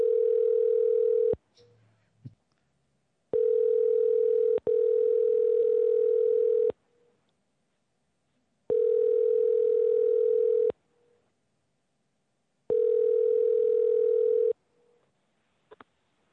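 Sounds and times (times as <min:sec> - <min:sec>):
telephone line tone while a call is placed: 0:00.0 - 0:01.4, 0:03.4 - 0:06.8, 0:08.7 - 0:10.7, 0:12.7 - 0:14.6.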